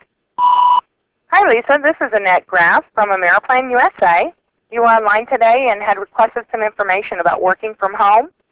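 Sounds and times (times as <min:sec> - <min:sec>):
voicemail answering machine short electronic beeps: 0:00.4 - 0:00.8
speech: 0:01.5 - 0:08.4.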